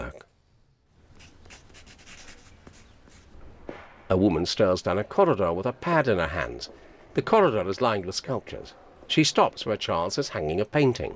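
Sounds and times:
pencil drawing a curved line on paper: 0:01.2 - 0:03.4
speech: 0:04.1 - 0:11.1.

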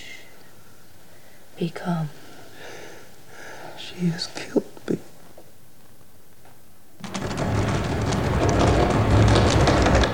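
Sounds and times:
speech: 0:01.6 - 0:02.2, 0:04.0 - 0:05.0
door handle rattling violently: 0:07.0 - 0:10.1
low rumbling roar: 0:07.0 - 0:10.1.

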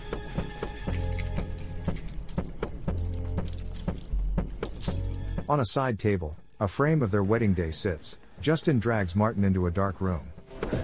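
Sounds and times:
handcuffs being unlocked: 0:00.0 - 0:05.3
keys jangling: 0:00.0 - 0:05.4
speech: 0:05.5 - 0:10.8.

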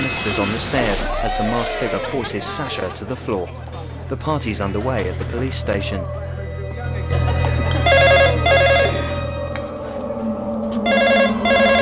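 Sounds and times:
speech: 0:00.2 - 0:06.3
laughter: 0:00.8 - 0:06.1, 0:06.8 - 0:09.2
office telephone at a police station ringing: 0:07.8 - 0:09.2, 0:10.9 - 0:11.8.

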